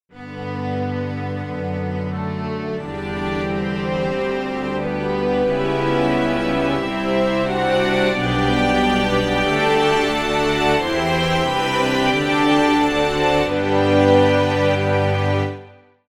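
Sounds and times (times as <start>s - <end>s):
chamber strings: 0.2s - 15.8s.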